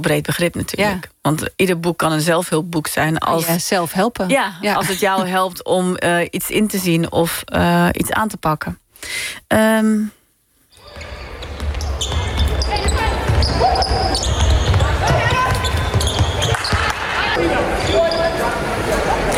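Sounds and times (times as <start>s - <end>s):
speech: 0.0s - 10.2s
busy noise in a school gymnasium: 10.8s - 19.3s
ball bouncing during sports in a school gymnasium: 10.9s - 17.0s.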